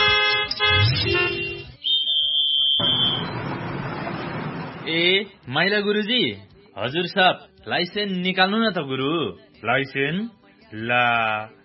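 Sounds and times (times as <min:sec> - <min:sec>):
motor vehicle horn honking while driven: 0:00.0 - 0:01.8
thin whistling tone: 0:01.8 - 0:03.3
low motor vehicle engine rumble: 0:02.8 - 0:05.0
speech: 0:04.9 - 0:11.6.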